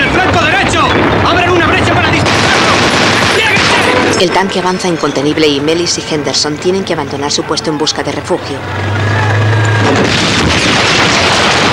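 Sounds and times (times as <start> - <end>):
loud explosion with rumbling roar: 0.0 - 4.2, 9.8 - 11.7
speech: 4.2 - 9.1
low engine-like hum: 5.1 - 10.1.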